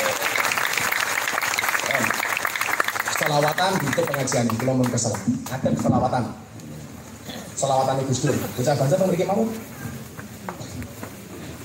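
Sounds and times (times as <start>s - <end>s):
crowd applause at a religious gathering: 0.0s - 5.6s
speech: 3.3s - 6.5s, 7.6s - 9.7s.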